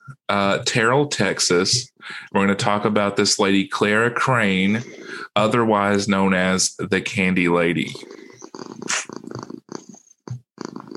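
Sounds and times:
speech: 0.3s - 8.8s
cat purring loudly and excitedly: 4.7s - 5.2s, 7.8s - 10.9s.

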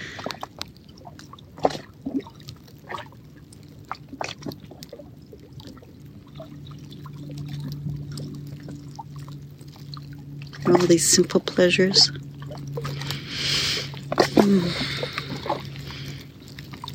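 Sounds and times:
lake water lapping and trickling: 0.0s - 16.9s
steady low hum: 0.0s - 16.9s
speech: 10.7s - 12.2s.

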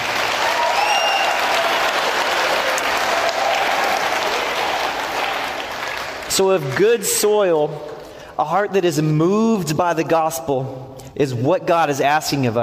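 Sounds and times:
room full of people applauding: 0.0s - 8.1s
faint vocal whoops: 0.3s - 4.5s
speech: 6.4s - 12.6s.

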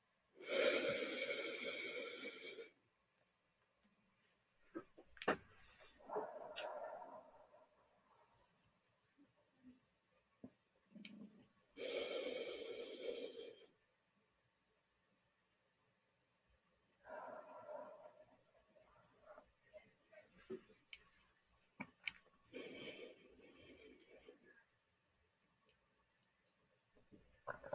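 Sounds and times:
faint small sounds: 0.0s - 27.7s
slow deep breaths taken for meditation: 0.4s - 2.8s, 11.8s - 13.8s, 17.0s - 19.4s, 22.5s - 24.7s.

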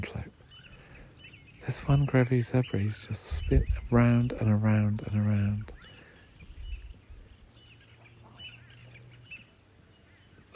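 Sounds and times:
faint bird calls in the savanna after rain: 0.0s - 10.5s
insects emerging in the savanna after rain: 0.0s - 10.5s
low steady rumble: 1.6s - 9.4s
speech: 1.7s - 5.8s.

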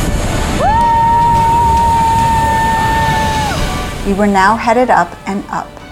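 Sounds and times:
roar of rushing water: 0.0s - 5.8s
speech: 4.1s - 5.8s.

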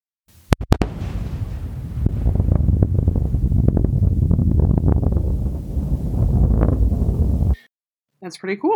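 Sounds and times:
triple sonic boom from a returning Falcon 9 rocket booster: 0.5s - 7.6s
long low rumble and windy roar: 0.9s - 7.6s
speech: 8.3s - 8.7s.

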